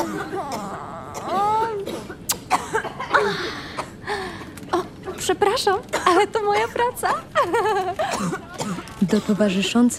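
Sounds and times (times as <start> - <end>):
person making strained groaning vocal sounds: 0.0 - 1.8
person coughing sharp raspy coughs: 0.0 - 4.0, 8.0 - 9.6
speech: 5.3 - 9.9
laughter: 6.1 - 9.9.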